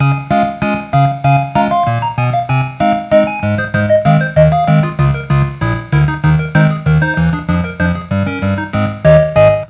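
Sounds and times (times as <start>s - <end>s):
game end music: 0.0s - 9.6s.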